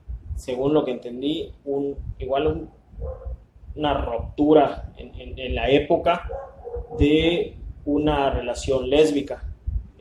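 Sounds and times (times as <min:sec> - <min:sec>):
low rumble: 0:00.0 - 0:09.9
speech: 0:00.4 - 0:09.5
dogs barking: 0:02.7 - 0:03.5, 0:06.2 - 0:07.2.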